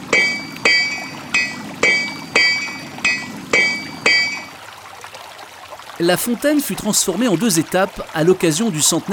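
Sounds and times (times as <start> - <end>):
blacksmith hammering metal on an anvil at a forge: 0.0 - 4.6
speech: 6.0 - 9.1.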